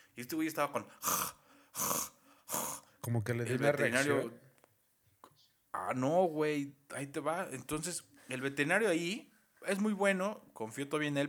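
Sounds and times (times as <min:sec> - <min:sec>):
speech: 0:00.2 - 0:02.1, 0:03.1 - 0:04.4, 0:05.8 - 0:11.2
person imitating a nervous pet's anxious panting: 0:00.9 - 0:03.0.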